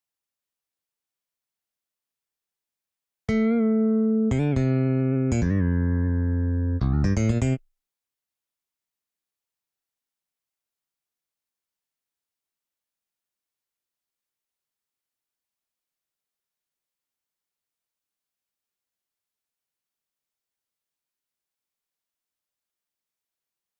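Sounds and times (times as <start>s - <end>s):
fretless bass: 3.3s - 7.6s.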